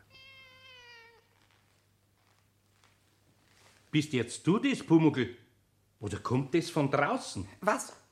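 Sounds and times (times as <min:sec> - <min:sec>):
cat meowing: 0:00.0 - 0:01.5
faint rustling and soft movement noises: 0:00.0 - 0:05.0
low steady hum: 0:00.0 - 0:08.1
speech: 0:03.9 - 0:05.4, 0:06.0 - 0:08.0.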